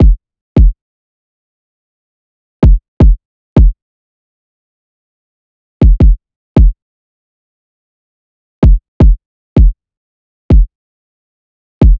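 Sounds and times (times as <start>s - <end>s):
trap kick drum: 0.0s - 0.8s, 2.6s - 3.8s, 5.8s - 6.8s, 8.6s - 9.8s, 10.5s - 10.7s.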